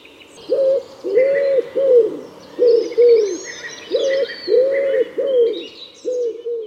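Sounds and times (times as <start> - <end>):
wood pigeon cooing: 0.5 - 6.6.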